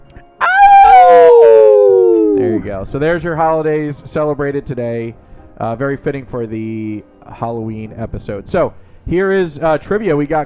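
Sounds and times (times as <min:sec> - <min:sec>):
long mournful howl: 0:00.4 - 0:02.6
speech: 0:02.8 - 0:10.4.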